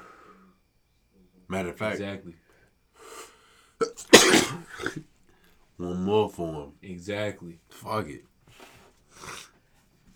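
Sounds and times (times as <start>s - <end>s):
speech: 1.5s - 2.4s, 5.8s - 8.3s
person sneezing: 3.8s - 5.0s.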